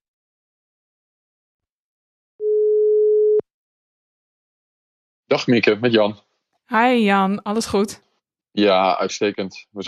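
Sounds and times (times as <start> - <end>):
telephone ringback tone for an outgoing call: 2.4 - 3.4
speech: 5.3 - 9.8.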